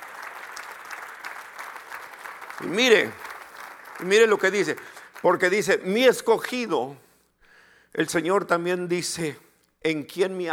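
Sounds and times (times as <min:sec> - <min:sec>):
church audience applauding: 0:00.0 - 0:05.7
speech: 0:02.6 - 0:03.2, 0:04.0 - 0:07.0, 0:07.9 - 0:10.5.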